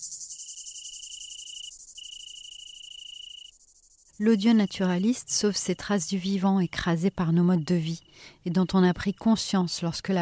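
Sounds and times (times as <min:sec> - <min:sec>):
Italian crickets trilling: 0:00.0 - 0:10.2
dense shimmering insect chorus: 0:00.0 - 0:10.2
speech: 0:04.2 - 0:10.2.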